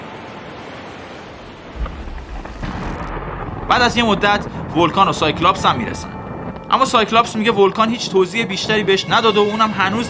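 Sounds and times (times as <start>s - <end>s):
steady rain during a storm on a beach: 0.0s - 10.0s
low thunder rumbling during a storm on a beach: 1.4s - 9.0s
speech: 3.7s - 10.0s.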